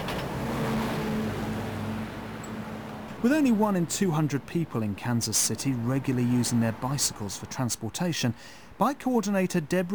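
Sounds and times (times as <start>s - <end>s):
city bus engine drone: 0.0s - 7.2s
broadband road rumble: 0.0s - 9.9s
speech: 3.2s - 9.9s.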